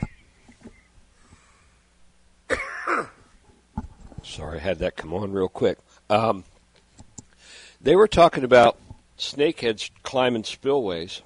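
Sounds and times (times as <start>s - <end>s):
faint throaty clicks and breaths: 0.0s - 1.8s, 6.7s - 7.8s
harsh cough: 2.5s - 3.3s
speech: 4.3s - 6.5s, 7.8s - 11.2s.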